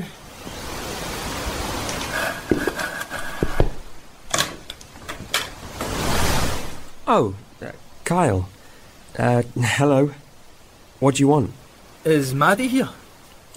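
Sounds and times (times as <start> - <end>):
hiss: 0.0 - 13.5
door creaking open: 3.3 - 5.9
speech: 7.1 - 8.5, 9.2 - 10.2, 11.0 - 13.0.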